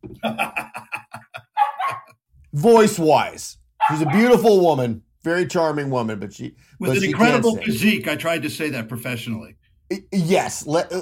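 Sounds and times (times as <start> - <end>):
speech: 0.1 - 0.6, 2.6 - 11.0
laughter: 0.1 - 2.1
dog barking: 1.6 - 2.1, 3.8 - 4.4.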